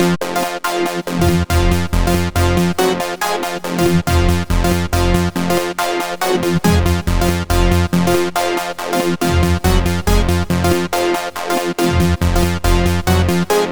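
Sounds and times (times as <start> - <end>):
synthesizer: 0.0 - 13.6.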